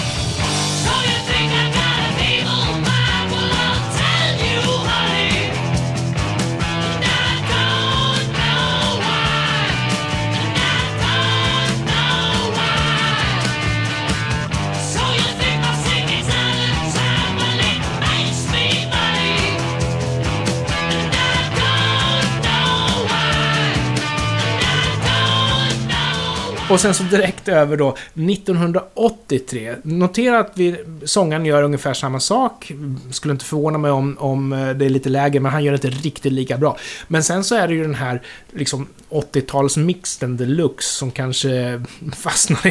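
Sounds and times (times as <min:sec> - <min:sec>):
1973 glam rock song recording with full band: 0:00.0 - 0:27.5
speech: 0:26.7 - 0:42.6
laughter: 0:42.1 - 0:42.6.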